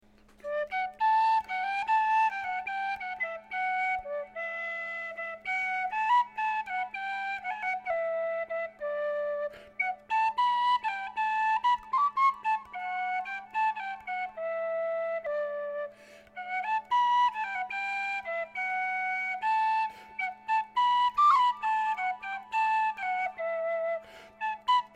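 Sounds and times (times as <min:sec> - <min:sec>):
penny whistle improvisation with echo: 0:00.3 - 0:24.9.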